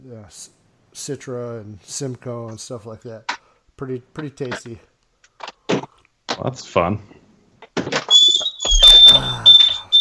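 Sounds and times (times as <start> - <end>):
speech: 0.0 - 4.9, 6.4 - 7.2, 9.2 - 9.5
garage door opening with mechanical whine and rattling: 8.6 - 10.0.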